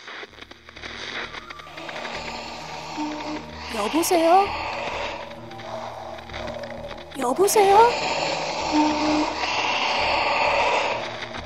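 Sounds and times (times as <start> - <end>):
heavy rough breathing through a phone call in an underground parking garage: 1.6 - 7.1, 7.8 - 11.4
speech: 3.7 - 4.7, 7.2 - 9.4.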